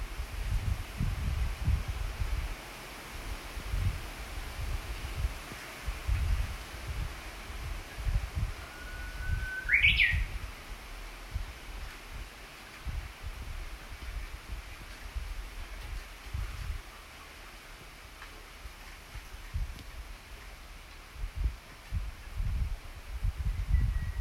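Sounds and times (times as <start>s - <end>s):
gusty wind: 0.0s - 24.1s
Japanese bush warbler song with long steady whistle and bright phrase: 8.0s - 10.4s, 23.4s - 24.1s.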